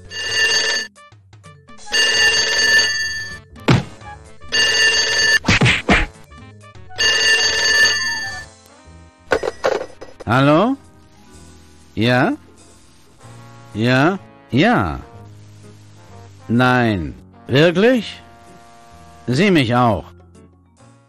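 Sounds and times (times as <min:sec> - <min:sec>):
telephone bell ringing: 0:00.0 - 0:00.9, 0:01.8 - 0:03.4, 0:04.5 - 0:05.4, 0:06.9 - 0:08.5
heavy thumps and knocks: 0:03.6 - 0:04.1
speech: 0:10.3 - 0:10.8, 0:12.0 - 0:12.4, 0:13.8 - 0:15.1, 0:16.5 - 0:18.2, 0:19.3 - 0:20.1.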